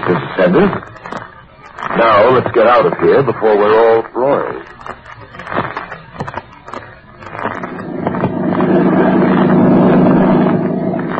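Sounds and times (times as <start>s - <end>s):
speech: 0.1s - 1.0s, 2.0s - 4.8s
motorboat engine on a lake: 7.8s - 11.1s.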